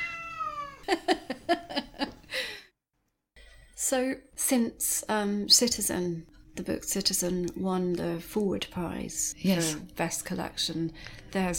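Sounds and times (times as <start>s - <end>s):
cat meowing with long and chirping meows: 0.0s - 0.9s
speech: 3.9s - 11.5s.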